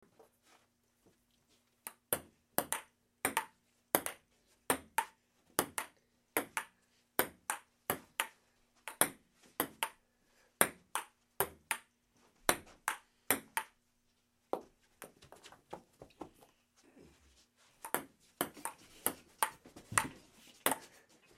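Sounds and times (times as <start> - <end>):
ping pong ball bouncing: 1.9 - 10.0, 10.6 - 11.9, 12.5 - 13.8, 17.8 - 20.1.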